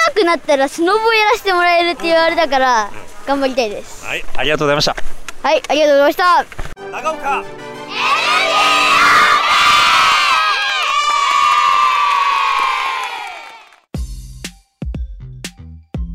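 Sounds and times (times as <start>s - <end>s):
speech: 0.2s - 8.2s
children shouting and cheering outdoors on a ski slope: 7.8s - 13.8s.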